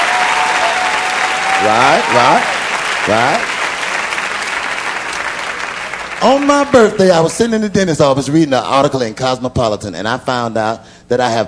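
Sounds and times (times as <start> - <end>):
audience applause for a birthday: 0.0 - 7.3
speech: 1.6 - 3.5, 6.2 - 11.4.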